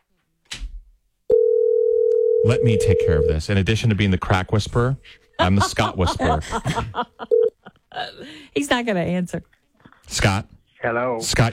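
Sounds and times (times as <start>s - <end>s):
telephone tone on a call being placed: 1.3s - 3.4s, 7.3s - 7.6s
speech: 2.5s - 11.5s
laughter: 5.4s - 8.2s, 11.2s - 11.5s.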